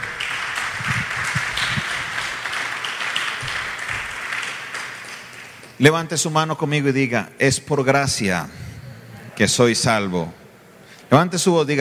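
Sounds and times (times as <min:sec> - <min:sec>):
crowd applauding loudly: 0:00.0 - 0:05.7
speech: 0:05.8 - 0:08.7, 0:09.4 - 0:10.4, 0:11.1 - 0:11.7.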